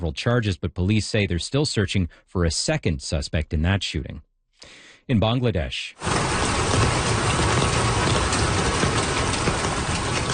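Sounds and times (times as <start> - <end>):
speech: 0.0 - 7.2
heavy monsoon rain pouring in Bangladesh: 6.0 - 10.3.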